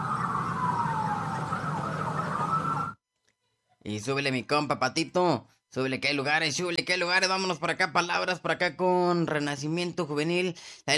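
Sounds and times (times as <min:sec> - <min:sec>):
rumble of traffic: 0:00.0 - 0:02.9
police car siren wailing: 0:00.0 - 0:03.0
speech: 0:03.9 - 0:10.9.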